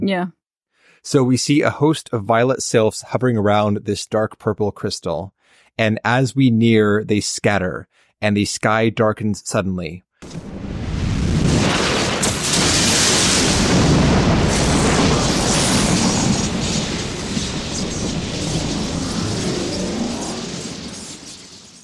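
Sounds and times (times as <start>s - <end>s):
speech: 0.0s - 0.4s, 1.0s - 10.5s
crackling lightning in a video game cutscene: 10.2s - 21.8s
thunder rumbling in a video game cutscene: 10.2s - 21.8s.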